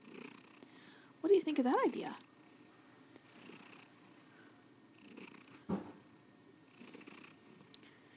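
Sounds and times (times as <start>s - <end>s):
domestic cat purring: 0.0s - 0.6s, 3.3s - 4.2s, 4.9s - 5.7s, 6.7s - 7.8s
speech: 1.2s - 2.3s
brief soft thump: 5.7s - 6.0s.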